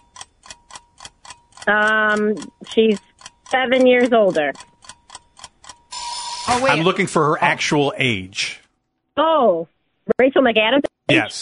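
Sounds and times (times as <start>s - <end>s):
quiz timer ticking: 0.0s - 8.2s
speech: 1.6s - 4.7s, 6.5s - 8.6s, 9.2s - 11.4s.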